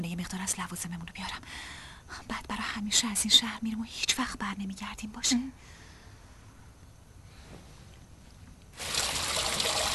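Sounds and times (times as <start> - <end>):
speech: 0.0 - 5.8
bath water trickling from tap into a bath: 8.8 - 9.9.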